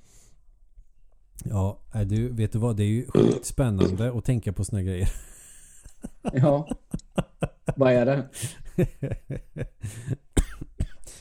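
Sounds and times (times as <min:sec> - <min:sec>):
speech: 0:01.4 - 0:05.3, 0:06.2 - 0:10.2
loud burp: 0:03.1 - 0:04.0
laughter: 0:05.0 - 0:10.2.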